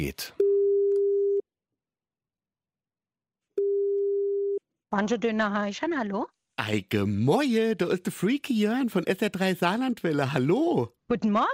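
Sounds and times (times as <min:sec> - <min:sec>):
speech: 0:00.0 - 0:00.4, 0:04.9 - 0:11.5
telephone ringback tone of an outgoing call: 0:03.6 - 0:04.6.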